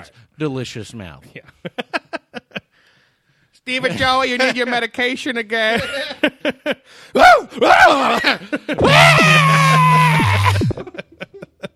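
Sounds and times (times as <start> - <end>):
speech: 0.0 - 2.0, 3.6 - 10.2
person screaming: 7.2 - 10.8
short strained vocal bursts from a person: 9.2 - 10.8.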